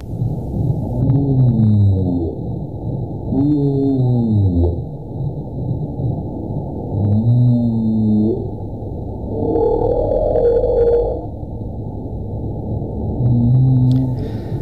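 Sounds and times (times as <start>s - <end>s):
deep underwater rumble: 0.0s - 14.6s
humpback whale song with moans, groans and grunts: 0.9s - 2.6s, 3.3s - 5.0s, 6.9s - 11.5s, 13.2s - 14.6s.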